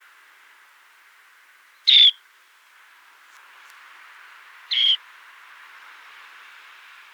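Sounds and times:
dunlin singing: 1.9 - 2.2, 4.7 - 5.0.

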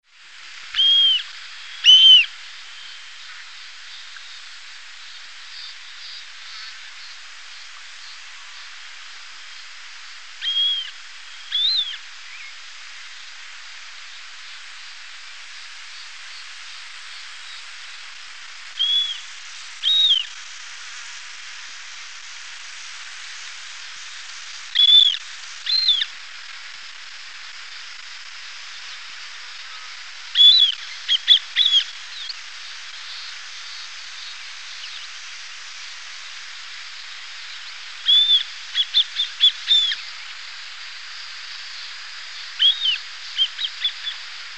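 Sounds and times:
Buffon's harrier calling: 0.7 - 8.7, 10.3 - 13.2, 18.7 - 20.4, 24.7 - 26.2, 28.8 - 35.2, 37.0 - 40.5, 41.4 - 44.5.

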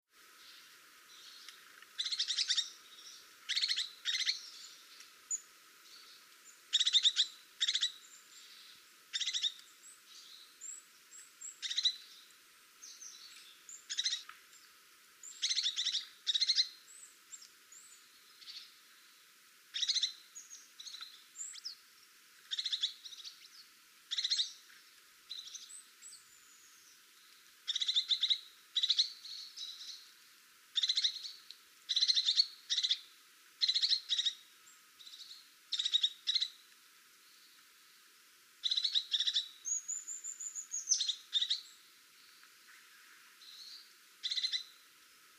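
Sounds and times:
crested tit: 0.4 - 19.1, 19.7 - 21.8, 22.5 - 24.7, 25.3 - 30.1, 30.8 - 34.4, 35.0 - 36.7, 38.6 - 44.8.

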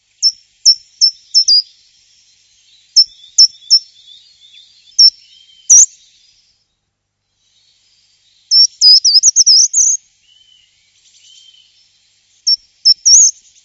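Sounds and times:
short-toed treecreeper singing: 0.0 - 6.8, 7.4 - 13.6.

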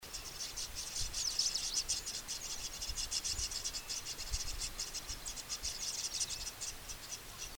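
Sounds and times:
rosy starling calling: 0.0 - 7.5.

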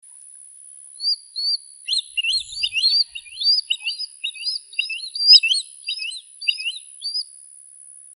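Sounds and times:
swallow-tailed kite calling: 1.0 - 7.2.

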